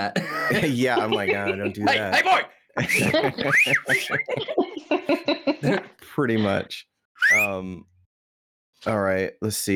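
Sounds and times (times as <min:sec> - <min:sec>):
speech: 0:00.0 - 0:07.9, 0:08.8 - 0:09.7
laughter: 0:00.2 - 0:06.6
person whistling a loud calling whistle: 0:02.9 - 0:04.3, 0:07.2 - 0:07.6.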